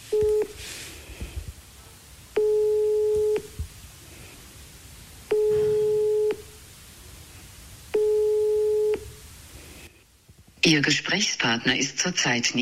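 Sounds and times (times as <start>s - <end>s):
telephone ringing tone from an outgoing phone call: 0.0s - 0.6s, 2.4s - 3.6s, 5.3s - 6.6s, 8.0s - 9.2s
faint hiss: 0.0s - 12.5s
speech: 10.7s - 12.5s.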